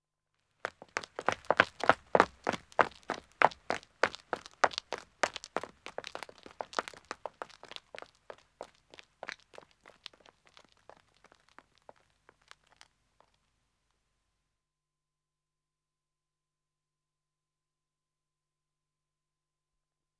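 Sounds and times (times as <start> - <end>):
two men running on a country road: 0.6 - 12.9.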